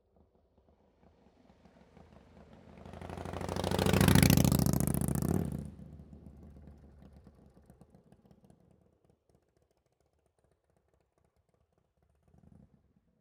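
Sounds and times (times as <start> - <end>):
motorcycle with straight pipes and tuned engine passing by fast with a misshift: 2.2 - 7.2.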